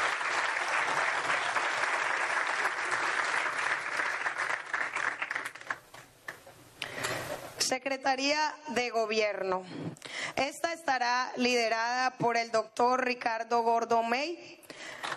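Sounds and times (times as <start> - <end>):
audience applause: 0.0 - 6.0
scattered claps: 0.0 - 6.4
speech: 7.7 - 14.6.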